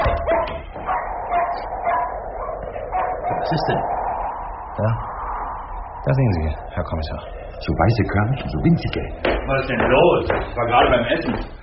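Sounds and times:
dog barking: 0:00.0 - 0:03.5
speech: 0:03.5 - 0:04.0, 0:04.8 - 0:05.1, 0:06.1 - 0:11.6.

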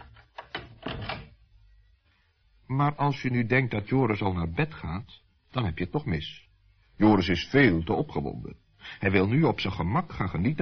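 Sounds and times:
door being shut as someone goes inside: 0:00.0 - 0:01.4
speech: 0:02.7 - 0:06.4, 0:07.0 - 0:10.6.

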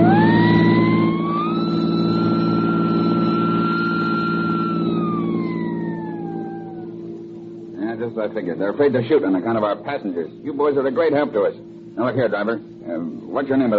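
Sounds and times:
police car siren wailing during chase: 0:00.0 - 0:07.6
speech: 0:08.2 - 0:13.7.

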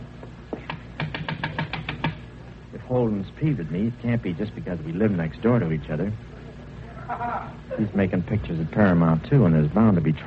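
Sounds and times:
knuckles rapping on a door: 0:01.0 - 0:02.2
speech: 0:02.9 - 0:06.4, 0:07.1 - 0:10.2.

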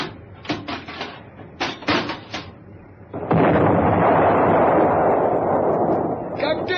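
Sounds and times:
heavy continuous roar: 0:00.0 - 0:06.7
deck cannon firing: 0:03.1 - 0:06.7.

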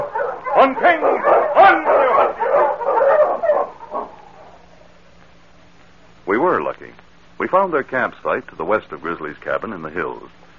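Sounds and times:
sled dog barking and yelping: 0:00.0 - 0:04.7
speech: 0:00.6 - 0:02.4, 0:06.4 - 0:10.4.

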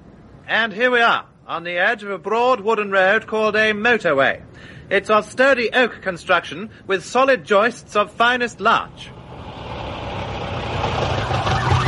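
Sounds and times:
speech: 0:00.5 - 0:09.2
1960s silver motor car engine rumble: 0:08.9 - 0:11.8.

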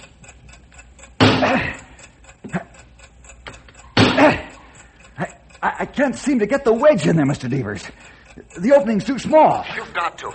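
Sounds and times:
faint bomb timer ticking: 0:00.0 - 0:10.3
sharp knocks: 0:01.2 - 0:01.8, 0:04.0 - 0:04.5
speech: 0:05.9 - 0:10.3.

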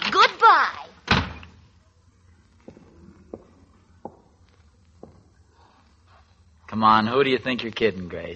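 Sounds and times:
door shutting with a solid thud: 0:01.0 - 0:01.6
speech: 0:06.8 - 0:08.3.

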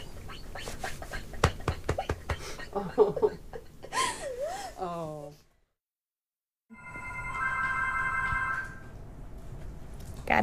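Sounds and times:
faint room hum: 0:00.0 - 0:05.7, 0:06.8 - 0:10.4
laughter: 0:02.4 - 0:04.2
speech: 0:02.8 - 0:03.5
telephone ringing with bright electronic tones: 0:06.7 - 0:09.0.

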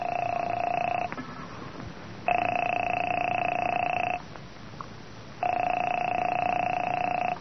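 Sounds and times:
telephone ringing on the line: 0:00.0 - 0:01.1, 0:02.3 - 0:04.2, 0:05.4 - 0:07.3.

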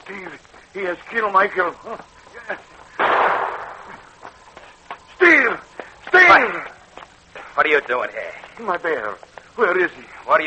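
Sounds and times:
speech: 0:00.1 - 0:02.8, 0:07.6 - 0:10.4
gunshot fired near the entrance of a mine: 0:03.0 - 0:04.1.

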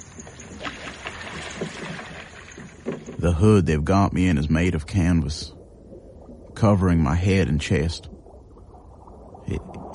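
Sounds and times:
oars dipping and pulling through water as a boat is rowed: 0:00.0 - 0:03.4
speech: 0:03.2 - 0:05.6, 0:06.6 - 0:08.2, 0:09.5 - 0:09.9.

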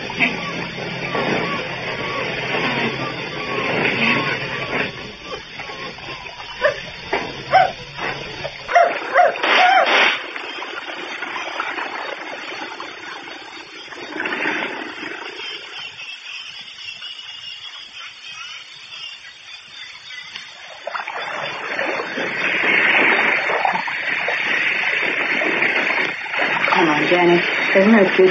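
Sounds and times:
dog howling and whimpering with sharper yelps: 0:00.0 - 0:09.9
steady hum: 0:00.0 - 0:28.2
speech: 0:00.2 - 0:00.9.

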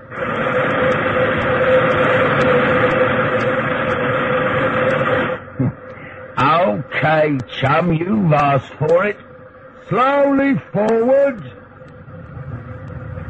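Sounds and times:
locomotive steam blast hissing: 0:00.0 - 0:05.4
low rumble: 0:00.0 - 0:13.2
speech: 0:07.3 - 0:09.2, 0:09.9 - 0:11.6.

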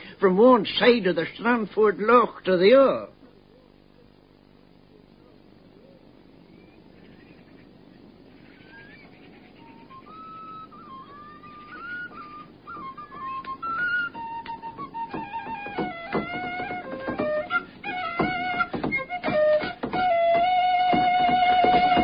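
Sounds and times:
speech: 0:00.2 - 0:03.2
whistle playing lively folk-style melody: 0:08.6 - 0:22.0.

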